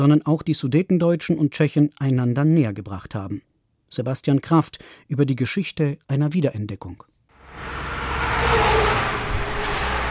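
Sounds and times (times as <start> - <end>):
speech: 0.0 - 7.7
heavy road traffic and lorries speeding past on a highway in Czechia: 7.4 - 10.0.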